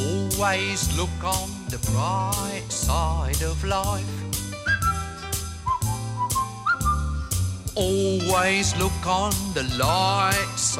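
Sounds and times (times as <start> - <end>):
light instrumental backing with a walking bass: 0.0 - 10.7
speech: 0.4 - 4.3, 7.8 - 10.7
whistled melody of a theme tune: 4.4 - 8.9.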